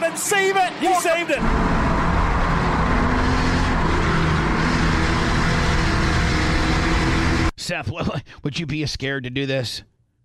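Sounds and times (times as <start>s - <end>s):
race cars roaring out of turn four on an oval track: 0.0s - 7.5s
speech: 0.2s - 1.8s, 7.7s - 9.9s.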